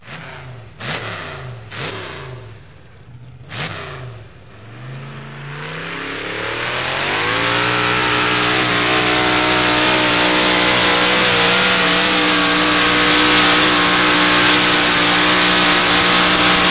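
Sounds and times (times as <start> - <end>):
tractor pull engines: 0.0 - 16.6.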